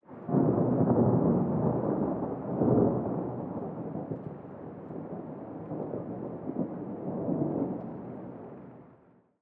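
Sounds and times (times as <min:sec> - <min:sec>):
thunder: 0:00.1 - 0:08.9.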